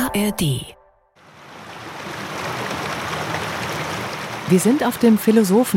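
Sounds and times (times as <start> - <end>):
speech: 0.2 - 0.8, 4.5 - 5.7
babbling brook beside a path: 1.2 - 5.7.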